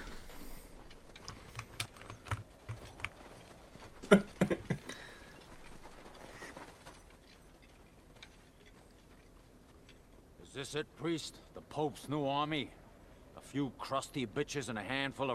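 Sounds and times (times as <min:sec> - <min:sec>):
low hum: 0:00.0 - 0:15.3
computer keyboard typing during a Google search: 0:01.2 - 0:03.3
speech: 0:10.6 - 0:12.8, 0:13.5 - 0:15.3.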